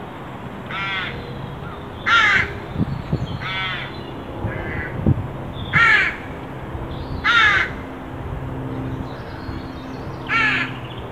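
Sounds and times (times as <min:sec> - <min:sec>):
Carrion crow Corvus corone cawing hoarsely: 0:00.7 - 0:02.8, 0:03.4 - 0:05.1, 0:05.7 - 0:06.4, 0:07.2 - 0:07.9, 0:10.2 - 0:10.8.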